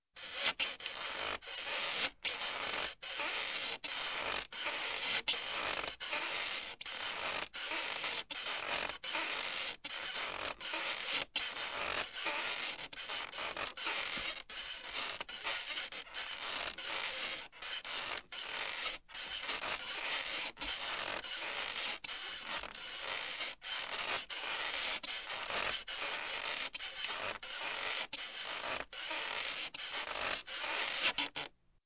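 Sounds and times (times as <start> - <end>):
rope squeaking: 0.2 - 31.5.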